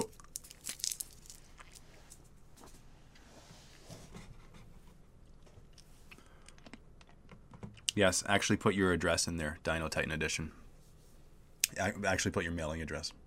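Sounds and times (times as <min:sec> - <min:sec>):
crunching and chewing of a cough drop: 0:00.0 - 0:02.2, 0:05.2 - 0:08.0
crinkly cough drop wrapper rustling: 0:00.0 - 0:02.3
speech: 0:08.0 - 0:10.6, 0:11.8 - 0:13.2.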